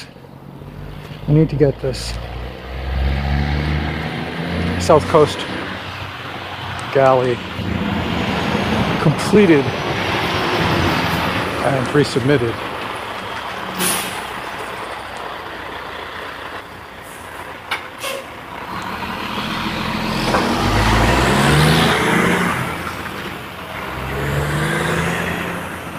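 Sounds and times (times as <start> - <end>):
heavy dump truck engine roaring with gear shifts: 0.0 - 25.9
speech: 1.3 - 2.3, 4.8 - 5.6, 6.9 - 7.8, 9.0 - 9.8, 11.6 - 12.7
dump truck air brakes hissing: 13.8 - 14.3, 18.0 - 18.4.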